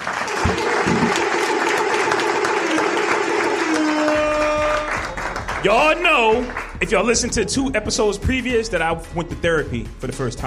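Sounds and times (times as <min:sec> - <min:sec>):
audience applause at a live recorded show: 0:00.0 - 0:07.1
speech: 0:05.6 - 0:10.4.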